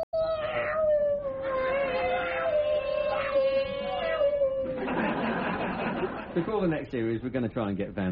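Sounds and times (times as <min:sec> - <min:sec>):
cat yowling imitating a Formula One racing car: 0:00.0 - 0:04.8
laughter: 0:04.6 - 0:06.8
speech: 0:06.4 - 0:08.0.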